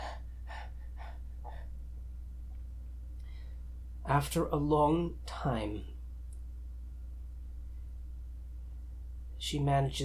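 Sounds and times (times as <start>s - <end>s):
rapid heavy hyperventilating breaths: 0.0s - 1.8s
speech: 4.1s - 5.9s, 9.5s - 10.0s.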